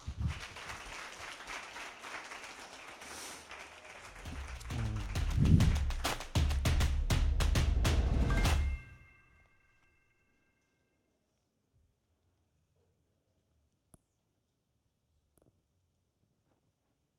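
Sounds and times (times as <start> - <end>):
audience applauding: 0.0 - 8.8.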